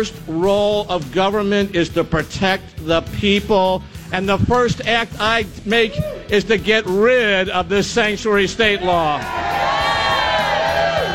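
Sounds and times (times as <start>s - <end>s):
speech: 0.0s - 9.6s
large unenthusiastic crowd cheering and shouting at political rally: 8.7s - 11.1s.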